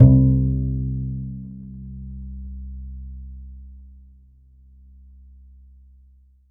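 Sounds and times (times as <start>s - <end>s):
upright bass note C1: 0.0s - 4.0s.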